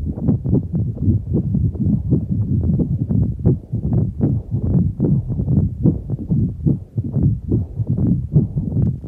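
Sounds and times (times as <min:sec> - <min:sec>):
heartbeats of two people recorded at a London studio: 0:00.0 - 0:09.0.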